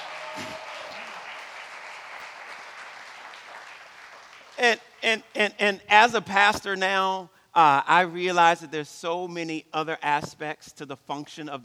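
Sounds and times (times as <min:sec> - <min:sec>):
person cheering: 0:00.0 - 0:01.2
large church audience applauding: 0:00.0 - 0:04.8
speech: 0:04.6 - 0:11.6.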